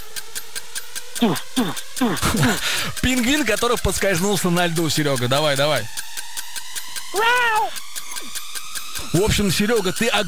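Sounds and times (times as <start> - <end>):
faint clicking ticks: 0.0 - 10.2
speech: 1.2 - 6.0, 7.1 - 7.8, 9.1 - 10.2
voice imitating a creaking horror-film door: 7.1 - 8.4.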